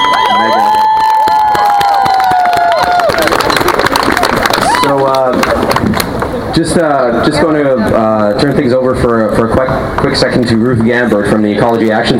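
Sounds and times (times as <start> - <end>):
whoops and shouts from several voices: 0.0 - 3.4, 4.5 - 5.2
crowd clapping: 0.0 - 6.4
speech: 6.6 - 12.1.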